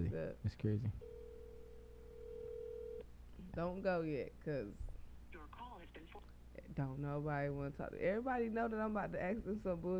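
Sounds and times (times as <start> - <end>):
speech: 0.0 - 1.1, 3.5 - 9.9
electronic ringback tone of an outgoing phone call: 1.0 - 3.0.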